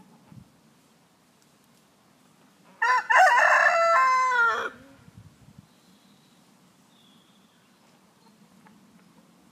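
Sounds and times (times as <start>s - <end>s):
rooster crowing: 2.8s - 4.9s.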